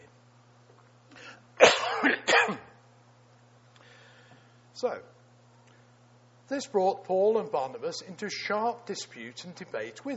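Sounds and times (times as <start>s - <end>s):
harsh coughing: 1.3s - 2.8s
speech: 4.8s - 5.2s, 6.5s - 10.1s.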